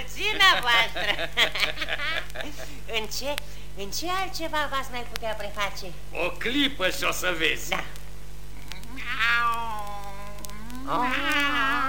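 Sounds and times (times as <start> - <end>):
faint steady hum: 0.0 - 11.8
speech: 0.2 - 8.0, 10.9 - 11.8
cat meowing: 8.7 - 11.8.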